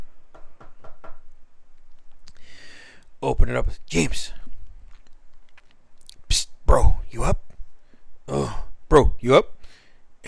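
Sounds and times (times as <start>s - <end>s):
knocking on a door: 0.3s - 1.2s
speech: 3.2s - 4.4s, 9.0s - 9.5s.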